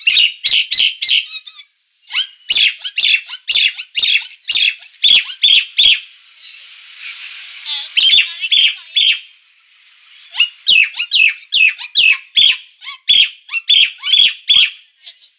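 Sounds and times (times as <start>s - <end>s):
Nias hill myna singing with harsh squawks and bright whistled tones: 0.0s - 9.4s, 10.0s - 15.1s
hiss: 4.0s - 12.8s.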